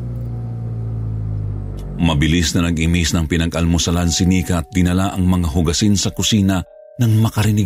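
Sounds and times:
car engine rumbling: 0:00.0 - 0:06.1
speech: 0:02.0 - 0:07.6.

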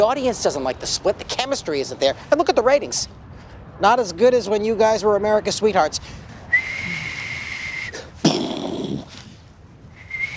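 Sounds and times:
speech: 0:00.0 - 0:03.2, 0:03.8 - 0:06.2
person whistling imitating a falling bomb: 0:06.5 - 0:08.0, 0:10.0 - 0:10.3.

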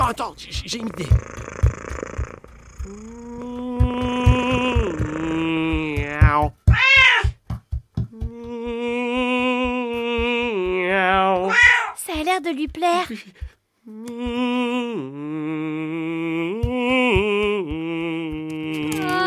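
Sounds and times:
steady low rhythmic thumping: 0:00.0 - 0:15.1, 0:15.9 - 0:19.2
speech: 0:00.1 - 0:01.7, 0:02.8 - 0:03.4, 0:12.4 - 0:15.2
cat meowing in long wavering cries: 0:06.7 - 0:07.3, 0:11.5 - 0:12.0.

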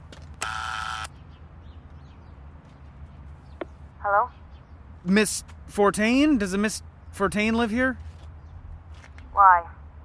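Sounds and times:
apartment building door buzzer: 0:00.4 - 0:01.1
speech: 0:05.0 - 0:08.1, 0:09.4 - 0:09.7.

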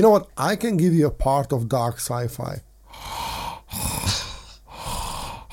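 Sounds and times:
speech: 0:00.1 - 0:02.7
heavy raspy breathing by a person: 0:02.9 - 0:05.5.

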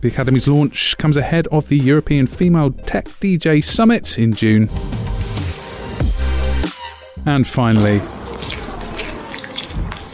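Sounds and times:
speech: 0:00.0 - 0:05.1, 0:07.2 - 0:08.6
two-toed sloth munching sweet potato and vegetable cake at a zoo in Bristol: 0:07.8 - 0:10.1.

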